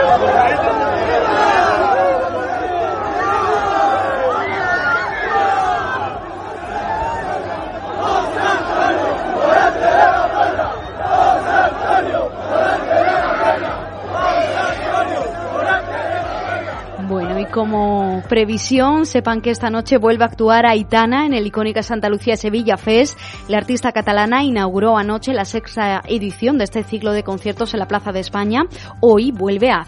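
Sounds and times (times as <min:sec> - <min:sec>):
large dense crowd of bullfight fans shouting and cheering: 0:00.0 - 0:19.2
speech: 0:18.3 - 0:29.8.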